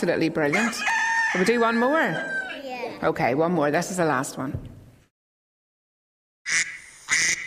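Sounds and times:
speech: 0:00.0 - 0:04.7
duck quacking: 0:06.5 - 0:07.4.

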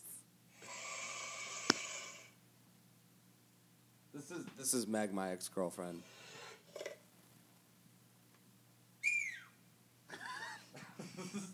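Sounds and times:
low hum: 0:00.0 - 0:11.5
speech: 0:04.2 - 0:06.2
person whistling through tinny phone playback: 0:09.0 - 0:09.5.

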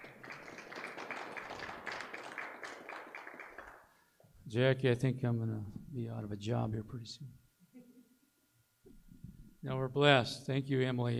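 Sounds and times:
small group applauding: 0:00.0 - 0:04.0
speech: 0:04.5 - 0:07.4, 0:09.6 - 0:11.1.

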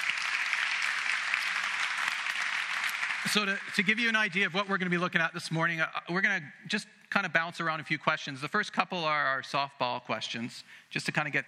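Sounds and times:
crowd applauding for a group of men stepping up: 0:00.0 - 0:05.0
speech: 0:03.2 - 0:11.4.

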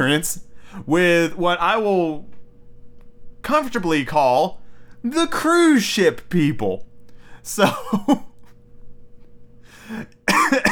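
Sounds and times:
speech: 0:00.0 - 0:02.3, 0:03.4 - 0:08.3, 0:09.9 - 0:10.6
breathy exhale: 0:09.6 - 0:10.1
sharp coughs brought on by laughter: 0:10.0 - 0:10.6.

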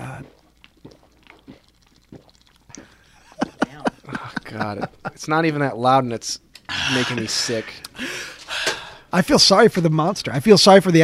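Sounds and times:
soft mouth noises: 0:00.0 - 0:04.4
person gulping down a whole drink in one go: 0:00.0 - 0:05.1
laughter: 0:03.2 - 0:05.3, 0:06.7 - 0:08.2
speech: 0:04.5 - 0:08.1, 0:09.1 - 0:11.0.

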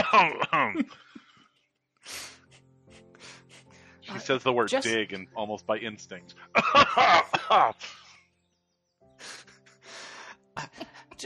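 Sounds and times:
voice imitating a cough with throaty voiced bursts: 0:00.0 - 0:01.0, 0:06.6 - 0:08.0
speech: 0:00.1 - 0:01.2, 0:04.1 - 0:08.0
laughter: 0:04.1 - 0:08.1, 0:10.6 - 0:11.2.

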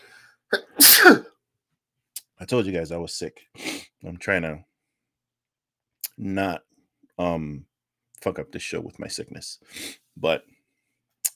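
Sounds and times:
person sneezing: 0:00.5 - 0:01.3
speech: 0:02.5 - 0:04.7, 0:06.2 - 0:10.6.

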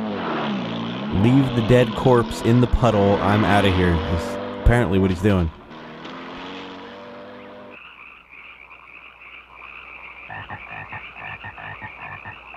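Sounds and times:
speech: 0:01.2 - 0:05.6
frogs croaking in a video game cutscene: 0:05.6 - 0:12.5.

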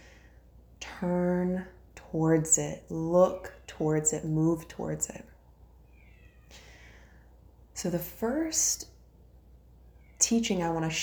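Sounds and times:
speech: 0:01.0 - 0:05.3, 0:07.8 - 0:08.9, 0:10.2 - 0:11.0
domestic cat meowing: 0:05.9 - 0:06.6.

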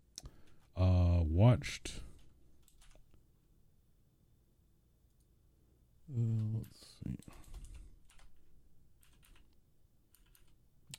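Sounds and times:
speech: 0:01.4 - 0:02.0
clicky computer keyboard typing: 0:02.2 - 0:03.1, 0:06.2 - 0:10.9.

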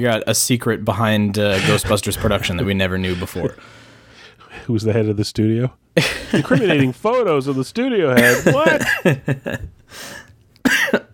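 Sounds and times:
speech: 0:00.0 - 0:03.9, 0:04.6 - 0:10.2
person in a coughing fit: 0:01.5 - 0:02.4, 0:08.2 - 0:09.2, 0:10.6 - 0:11.1
laughter: 0:06.0 - 0:07.6, 0:08.2 - 0:09.7.

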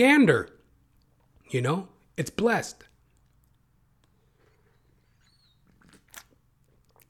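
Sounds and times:
speech: 0:00.0 - 0:00.5, 0:01.5 - 0:02.9
person sipping a drink: 0:03.1 - 0:07.0.

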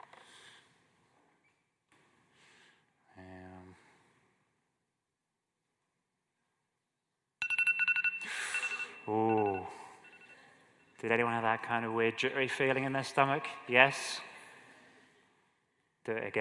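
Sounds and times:
Apple iPhone ringtone chiming: 0:07.4 - 0:10.6
speech: 0:11.0 - 0:14.3, 0:16.0 - 0:16.4.

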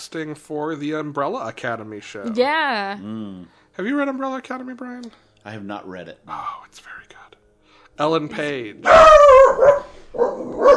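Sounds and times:
speech: 0:00.1 - 0:07.4, 0:08.0 - 0:10.7
dog barking at a neighbor mowing a lawn: 0:08.8 - 0:10.7.

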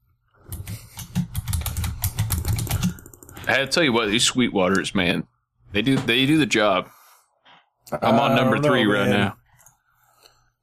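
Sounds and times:
rapid frantic typing on a computer keyboard: 0:00.5 - 0:03.8
speech: 0:03.5 - 0:07.0, 0:07.9 - 0:09.4.

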